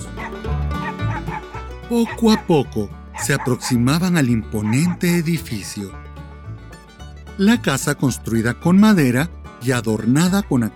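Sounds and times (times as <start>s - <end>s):
dogs yelping and howling: 0.0s - 2.6s, 3.2s - 4.0s, 4.6s - 5.0s
several dogs barking in the distance: 0.0s - 5.4s
speech: 1.9s - 6.1s, 7.4s - 10.7s.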